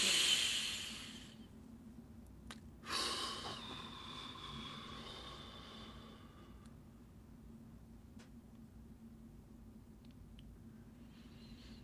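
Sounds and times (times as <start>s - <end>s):
deep slow breath during a relaxation exercise: 0.0s - 1.5s, 2.8s - 7.0s.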